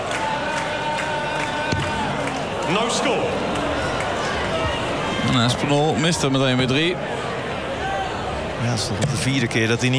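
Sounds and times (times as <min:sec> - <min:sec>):
loud shouts from a darts crowd: 0:00.0 - 0:05.8
big crowd cheering at a darts match: 0:00.0 - 0:08.6
speech: 0:02.7 - 0:03.6, 0:05.2 - 0:07.2, 0:08.6 - 0:09.9.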